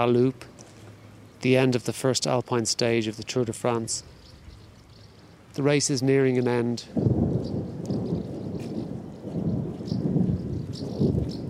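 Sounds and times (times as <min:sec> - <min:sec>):
speech: 0:00.0 - 0:00.5, 0:01.4 - 0:04.2, 0:05.6 - 0:07.1
low rolling thunder across the sky: 0:06.9 - 0:11.4.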